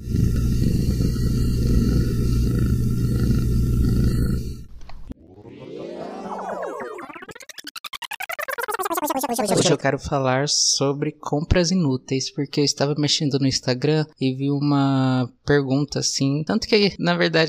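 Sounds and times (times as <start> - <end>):
domestic cat purring into the microphone: 0.0 - 4.7
sweeping pulsing electronic tones: 5.1 - 9.8
speech: 9.4 - 17.4.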